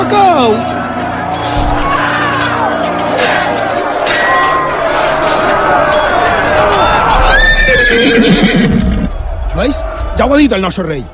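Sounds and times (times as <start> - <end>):
crowd of voices: 0.0 - 11.1
horse whinnying: 7.1 - 9.1
speech: 10.2 - 11.1.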